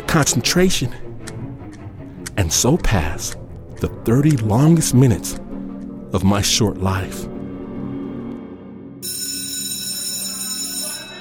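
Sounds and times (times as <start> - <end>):
speech: 0.1 - 1.0, 2.4 - 5.4, 6.1 - 7.3
electric school bell ringing: 9.0 - 11.1.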